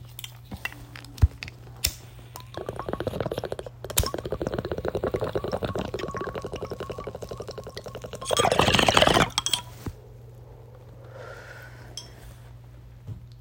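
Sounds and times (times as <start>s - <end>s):
bong water bubbling during a hit from a freshly packed bowl: 2.3s - 9.6s.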